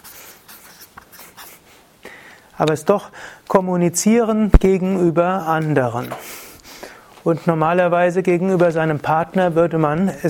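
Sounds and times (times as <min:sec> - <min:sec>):
handwriting on paper: 0:00.0 - 0:01.7
speech: 0:02.6 - 0:06.3, 0:07.2 - 0:10.2.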